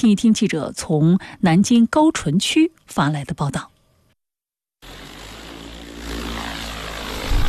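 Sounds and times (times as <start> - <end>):
speech: 0.0 - 3.7
crop-spraying propeller drone flying over a rice field: 4.8 - 7.4.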